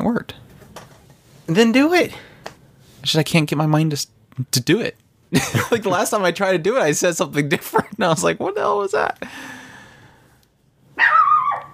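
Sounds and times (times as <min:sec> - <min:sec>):
speech: 0:01.5 - 0:02.3, 0:03.0 - 0:09.6
dog barking: 0:11.0 - 0:11.7.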